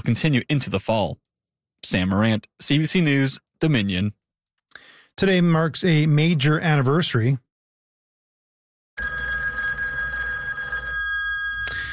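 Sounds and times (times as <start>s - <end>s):
speech: 0.0s - 1.2s, 1.8s - 7.5s
telephone bell ringing: 9.0s - 11.9s.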